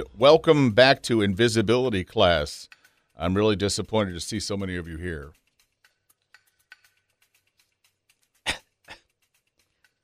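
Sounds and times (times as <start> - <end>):
speech: 0.0 - 5.4
person coughing roughly: 8.5 - 9.1.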